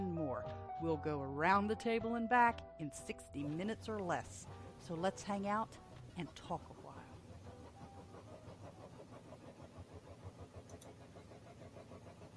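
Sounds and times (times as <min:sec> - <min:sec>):
speech: 0:00.8 - 0:06.8
washing machine running with churning rumble: 0:03.5 - 0:12.3.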